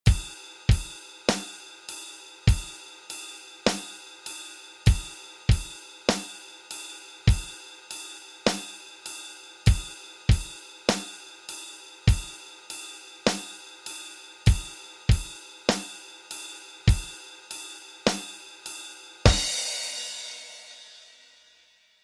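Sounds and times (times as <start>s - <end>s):
basic rock rhythm: 0.0s - 21.1s.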